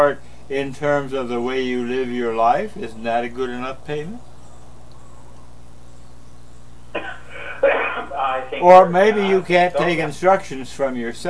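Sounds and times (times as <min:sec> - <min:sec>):
speech: 0:00.0 - 0:04.3, 0:08.1 - 0:11.2
person coughing: 0:07.0 - 0:08.2
laughter: 0:07.0 - 0:10.8.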